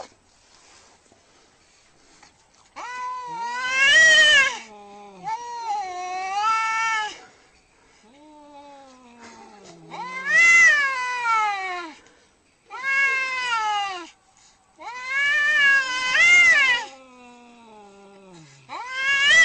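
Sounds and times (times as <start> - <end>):
domestic cat yowling angrily: 2.8 - 7.2, 8.6 - 12.0, 12.7 - 14.2, 14.8 - 18.0, 18.7 - 19.4.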